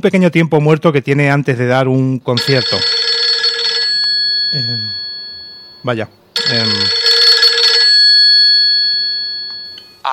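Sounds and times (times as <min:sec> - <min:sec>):
speech: 0:00.0 - 0:03.0, 0:04.5 - 0:05.0, 0:05.8 - 0:07.0
mobile phone ringing with a bright electronic tone: 0:02.4 - 0:10.1.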